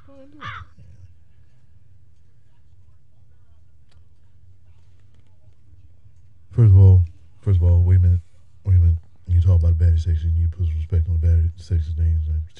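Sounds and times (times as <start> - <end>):
crow cawing: 0.0 - 0.8
speech: 0.1 - 0.8, 6.6 - 8.2, 9.5 - 12.5
steady low hum: 6.5 - 12.5.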